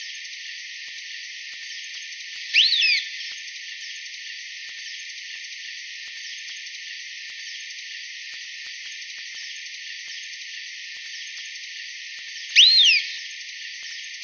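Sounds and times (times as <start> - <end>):
Long-tailed Tyrant Colonia colonus rising-then-falling whistle: 2.5 - 3.3, 12.5 - 13.3.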